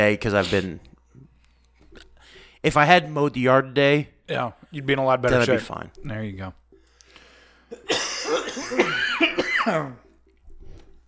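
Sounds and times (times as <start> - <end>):
speech: 0.0 - 0.9, 2.6 - 6.6, 7.7 - 10.0
person in a harsh raspy coughing fit: 7.7 - 10.1.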